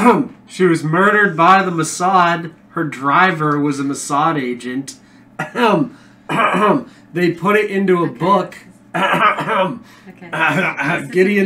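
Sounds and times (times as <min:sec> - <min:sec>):
speech: 0:00.0 - 0:11.4
person coughing: 0:05.4 - 0:06.9, 0:08.9 - 0:11.2.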